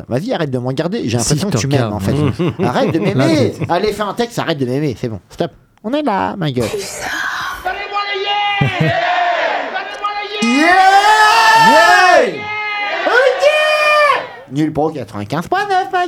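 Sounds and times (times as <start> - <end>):
speech: 0.0 - 7.3, 10.5 - 12.5, 14.5 - 16.0
laughter: 1.6 - 4.1, 7.6 - 11.0
loud crowd cheering and yelling with whoops and shouts: 7.6 - 14.5.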